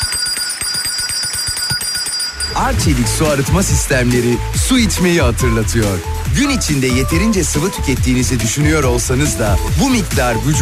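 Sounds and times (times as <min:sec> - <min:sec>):
bell chime jingle: 0:00.0 - 0:05.1
pulsing beat: 0:00.7 - 0:10.6
speech: 0:02.6 - 0:10.6.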